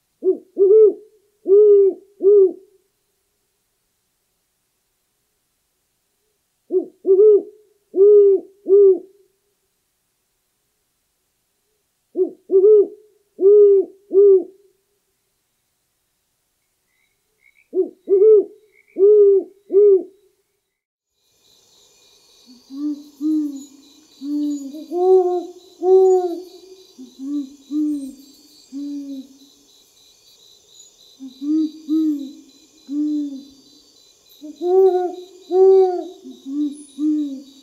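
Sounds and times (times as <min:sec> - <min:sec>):
Great Horned Owl hooting in the USA: 0:00.2 - 0:02.8, 0:06.7 - 0:09.2, 0:12.1 - 0:14.7, 0:17.4 - 0:20.2, 0:22.4 - 0:29.4, 0:31.2 - 0:37.6.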